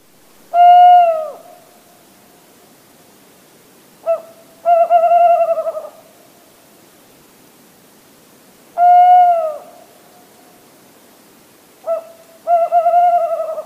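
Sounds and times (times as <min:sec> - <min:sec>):
tawny owl hooting song: 0:00.5 - 0:01.8, 0:04.0 - 0:06.2, 0:08.8 - 0:10.0, 0:11.8 - 0:13.6.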